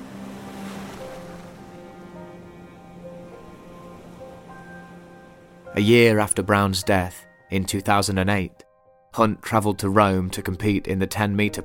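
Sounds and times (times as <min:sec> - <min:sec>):
sea surf rolling onto a shore: 0:00.0 - 0:05.8
soft sustained musical tones: 0:00.0 - 0:09.1
speech: 0:05.8 - 0:11.6.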